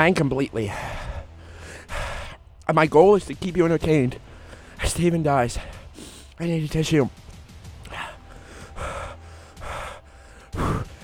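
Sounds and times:
speech: 0:00.0 - 0:01.0, 0:02.7 - 0:07.2
heavy breathing after eating a hot pepper: 0:00.6 - 0:02.7, 0:04.2 - 0:04.9, 0:05.5 - 0:06.4, 0:07.7 - 0:11.0.

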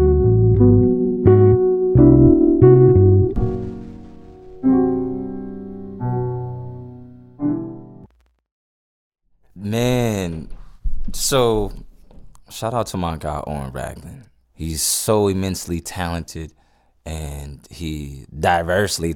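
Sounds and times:
jazz chords played on keys: 0:00.0 - 0:08.4
speech: 0:11.3 - 0:11.8, 0:12.5 - 0:19.1.

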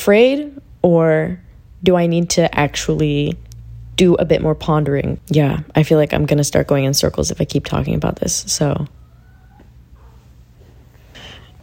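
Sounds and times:
speech: 0:00.0 - 0:03.4, 0:04.0 - 0:09.0
steady low hum: 0:00.0 - 0:11.6
female cat whining to come in: 0:08.9 - 0:10.2.

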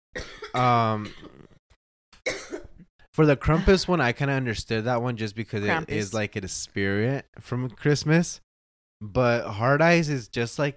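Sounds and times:
person clearing dust from throat: 0:00.2 - 0:01.6, 0:02.3 - 0:02.9
speech: 0:00.5 - 0:01.4, 0:03.2 - 0:08.4, 0:09.0 - 0:10.7.

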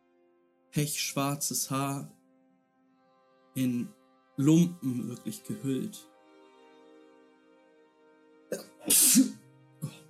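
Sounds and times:
speech: 0:00.7 - 0:02.2, 0:03.6 - 0:06.1, 0:08.5 - 0:09.4
woman sneezing: 0:08.8 - 0:09.4.

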